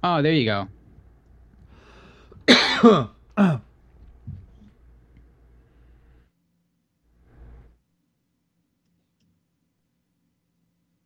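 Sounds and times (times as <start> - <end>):
person with a dry throat coughing: 2.4 - 3.7
throat clearing: 2.4 - 3.7.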